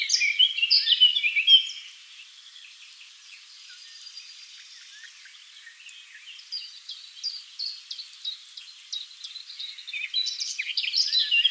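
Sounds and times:
Eurasian blackcap Sylvia atricapilla twittering and warbling: 0.0 - 11.5.

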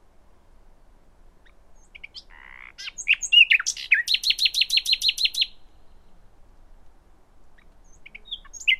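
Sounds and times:
Common nightingale song: 1.3 - 8.7.

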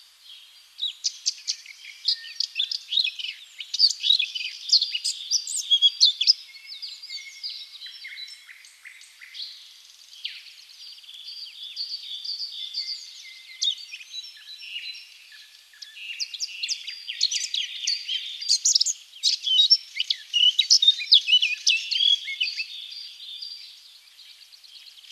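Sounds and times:
Eurasian blackcap song: 0.0 - 25.1.

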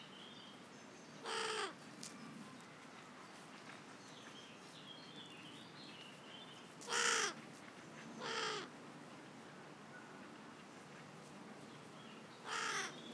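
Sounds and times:
carrion crow Corvus corone cawing: 1.3 - 1.7, 6.9 - 7.4, 8.2 - 8.7, 12.5 - 13.0.

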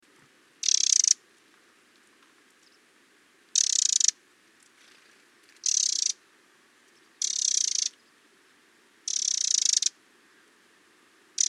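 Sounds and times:
Eurasian wren Troglodytes troglodytes rattling calls: 0.6 - 1.2, 3.5 - 4.2, 5.6 - 6.2, 7.2 - 8.1, 9.1 - 9.9.

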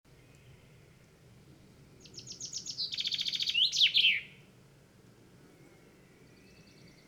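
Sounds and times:
Common chaffinch Fringilla coelebs song with descending notes and rattling trill: 1.9 - 4.4, 6.0 - 7.0.

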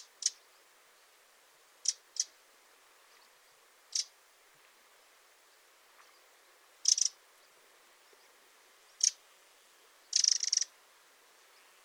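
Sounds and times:
Eurasian wren calling with ticking and churring rattles: 0.0 - 0.6, 1.8 - 2.4, 3.1 - 4.2, 6.8 - 7.5, 8.9 - 9.2, 10.0 - 10.7, 11.6 - 11.8.

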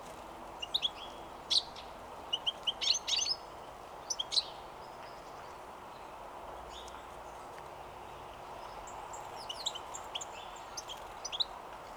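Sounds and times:
steady low background hiss: 0.0 - 11.9
European goldfinch Carduelis carduelis chirping and twittering: 0.6 - 5.6, 8.6 - 11.6.

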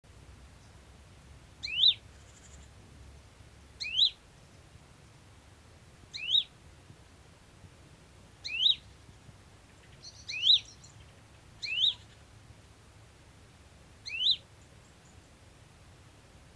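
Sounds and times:
Great tit Parus major sharp calls: 1.6 - 2.7, 3.8 - 4.2, 6.1 - 6.5, 8.4 - 8.9, 9.8 - 11.0, 11.6 - 12.2, 14.1 - 14.4.

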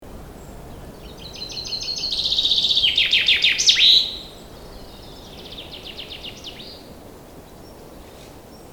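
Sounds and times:
common chaffinch Fringilla coelebs singing: 0.3 - 6.9.

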